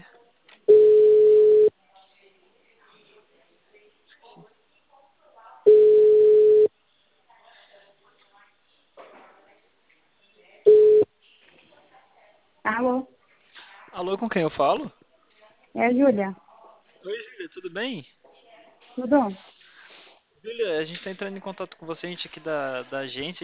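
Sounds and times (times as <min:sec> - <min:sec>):
faint scattered noises: 0:00.0 - 0:23.4
ringback tone of an outgoing telephone call: 0:00.7 - 0:01.7, 0:05.7 - 0:06.7, 0:10.7 - 0:11.1
speech: 0:12.8 - 0:13.1, 0:14.0 - 0:15.0, 0:15.7 - 0:16.4, 0:17.0 - 0:18.2, 0:19.0 - 0:19.5, 0:20.4 - 0:23.4.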